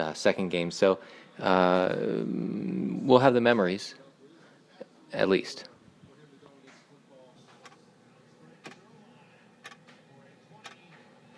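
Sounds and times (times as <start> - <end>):
speech: 0.0 - 4.0, 5.1 - 5.7
low hum: 0.0 - 11.3
clock ticking: 9.6 - 9.9.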